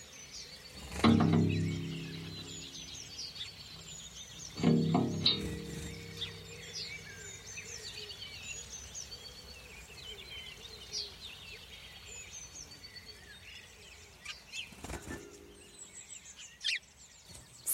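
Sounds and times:
dawn chorus of many birds chirping around a waterhole: 0:00.0 - 0:17.7
deep droning calls: 0:01.1 - 0:08.4.

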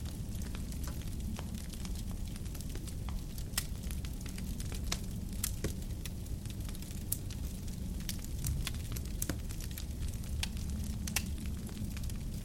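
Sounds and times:
large wood fire crackling in an open stone fireplace: 0:00.0 - 0:12.4
low warm rumble of flames: 0:00.0 - 0:12.4.

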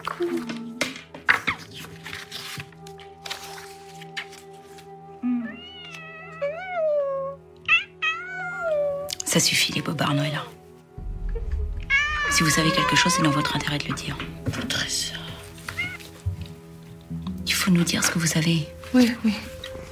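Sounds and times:
rustling and shuffling handling noises: 0:00.0 - 0:06.2, 0:12.6 - 0:19.8
speech: 0:00.2 - 0:00.6, 0:09.3 - 0:10.6, 0:12.4 - 0:15.2, 0:17.7 - 0:19.6
cat meowing in drawn-out wavering cries: 0:05.3 - 0:09.1, 0:11.8 - 0:14.4, 0:15.7 - 0:16.1.

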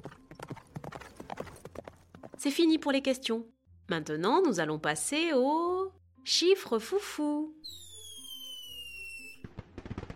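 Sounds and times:
horse hooves clip-clopping: 0:00.0 - 0:02.4
speech: 0:02.4 - 0:07.8.

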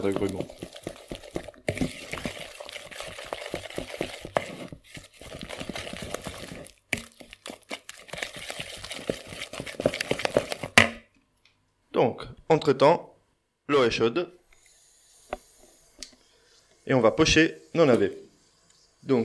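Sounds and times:
speech: 0:00.0 - 0:00.8, 0:12.6 - 0:13.1, 0:13.7 - 0:14.4, 0:16.9 - 0:18.2, 0:19.0 - 0:19.2
beer being stirred into a batter: 0:00.0 - 0:11.0.

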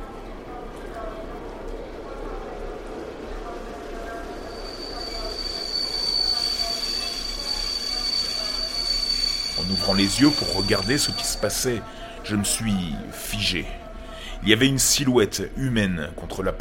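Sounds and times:
metro train braking hard: 0:00.0 - 0:14.4
low rattling roar of metro carriages: 0:01.5 - 0:12.3
metro train wheels squealing: 0:03.9 - 0:11.9
speech: 0:09.8 - 0:13.8, 0:14.4 - 0:16.5.

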